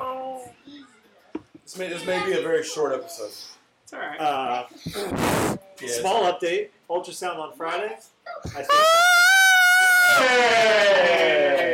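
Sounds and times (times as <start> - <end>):
speech: 1.7 - 9.1, 10.2 - 11.7
girl screaming into a microphone: 8.3 - 10.3.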